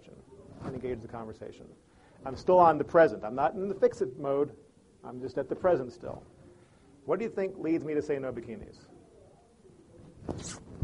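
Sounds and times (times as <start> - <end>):
speech: 0.8 - 6.4, 7.1 - 8.9
soft zipping swish: 10.2 - 10.8.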